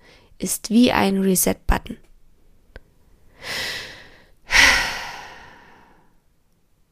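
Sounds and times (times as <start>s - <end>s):
speech: 0.4s - 2.0s
deep breathing: 3.3s - 6.2s.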